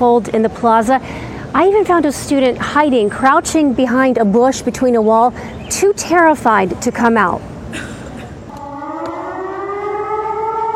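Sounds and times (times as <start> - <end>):
speech: 0.0 - 8.0
emergency alert siren blaring across a university campus: 8.5 - 10.7.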